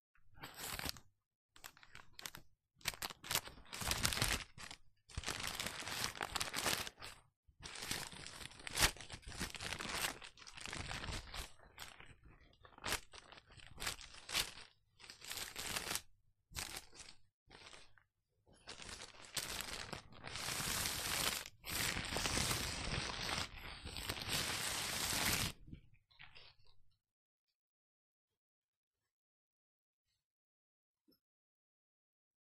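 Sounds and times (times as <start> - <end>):
person reading the paper: 0.4 - 18.0, 18.6 - 25.6.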